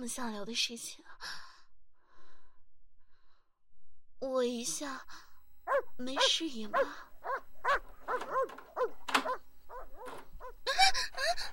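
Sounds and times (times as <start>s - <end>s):
speech: 0.0s - 1.4s, 4.2s - 7.4s, 8.2s - 9.4s
male wolfdog in heat giving yelping barks: 5.7s - 10.7s.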